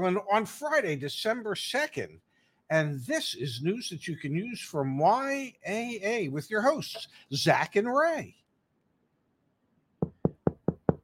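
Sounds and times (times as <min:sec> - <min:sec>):
speech: 0:00.0 - 0:08.4
firm knocking on a wooden door: 0:10.0 - 0:11.0.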